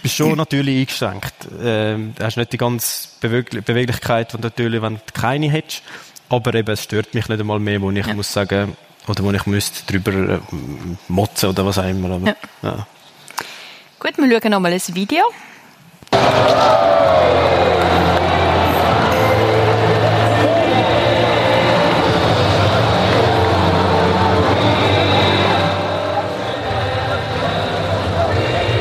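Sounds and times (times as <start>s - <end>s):
speech: 0.0s - 18.2s
large crowd cheering celebrating a Champions League win: 16.1s - 28.7s.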